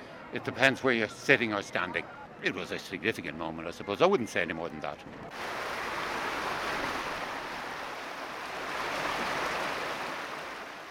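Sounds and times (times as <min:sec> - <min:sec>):
speech: 0:00.3 - 0:05.8
water lapping and rushing at the edge of a large reservoir: 0:05.3 - 0:10.9.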